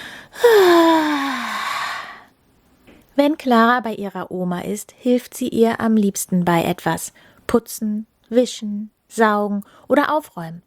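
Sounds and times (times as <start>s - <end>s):
loud drawn-out breathy voiced yawn: 0.4s - 2.3s
speech: 3.2s - 10.6s.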